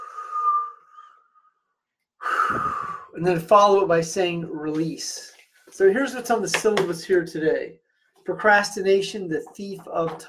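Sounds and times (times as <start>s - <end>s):
long deep breath with a faint whistling edge: 0.0s - 1.2s, 2.2s - 3.2s
speech: 2.5s - 10.2s.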